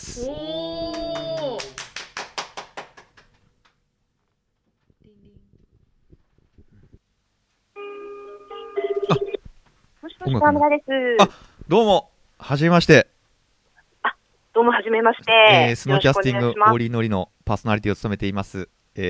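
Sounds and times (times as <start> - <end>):
speech: 0.0 - 0.6, 10.3 - 13.1, 14.9 - 19.0
outgoing phone call ringing tone: 7.8 - 9.4.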